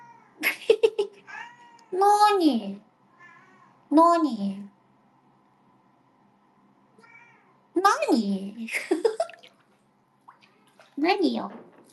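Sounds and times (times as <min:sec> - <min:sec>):
cat meowing: 0:00.0 - 0:00.4, 0:01.2 - 0:02.0, 0:03.1 - 0:03.8, 0:07.0 - 0:07.6
speech: 0:01.9 - 0:02.9, 0:03.9 - 0:04.7, 0:07.8 - 0:09.1, 0:11.0 - 0:11.6.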